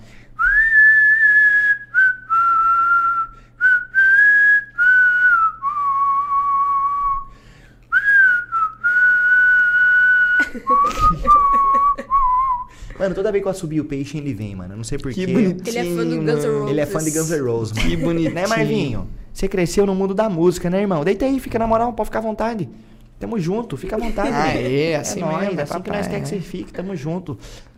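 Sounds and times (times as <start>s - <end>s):
person whistling a melodic tune: 0.4s - 12.8s
laughter: 10.4s - 13.4s, 15.3s - 18.9s, 23.8s - 27.0s
speech: 13.0s - 27.7s.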